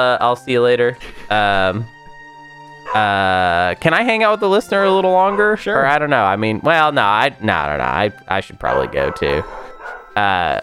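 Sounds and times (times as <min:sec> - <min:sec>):
speech: 0:00.0 - 0:02.0, 0:02.9 - 0:09.6, 0:10.2 - 0:10.6
dog barking: 0:02.8 - 0:03.3, 0:05.3 - 0:05.6, 0:08.6 - 0:10.6.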